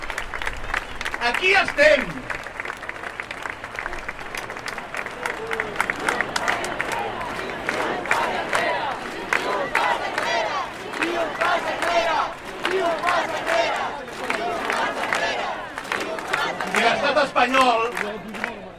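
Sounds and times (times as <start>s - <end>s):
crowd applause: 0.0s - 18.7s
speech: 1.2s - 2.4s, 16.8s - 18.3s
huge rally crowd shouting and cheering: 3.8s - 18.7s.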